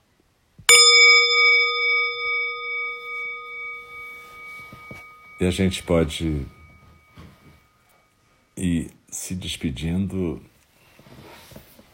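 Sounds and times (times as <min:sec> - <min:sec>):
meditation bell struck during a meditation session: 0:00.7 - 0:08.5
speech: 0:05.4 - 0:06.6, 0:09.3 - 0:10.5.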